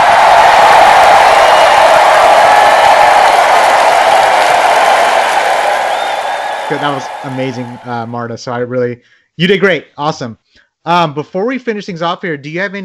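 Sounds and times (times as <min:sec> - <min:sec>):
crowd applauding after a sung song: 0:00.0 - 0:08.2
speech: 0:06.8 - 0:12.8.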